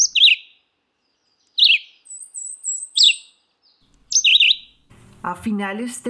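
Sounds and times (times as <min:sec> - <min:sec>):
red-eyed vireo song in a cottonwood forest along a river: 0:00.0 - 0:00.6, 0:01.2 - 0:04.7
thin high whistle from another bird: 0:01.5 - 0:03.4, 0:04.1 - 0:04.6
speech: 0:05.2 - 0:06.0.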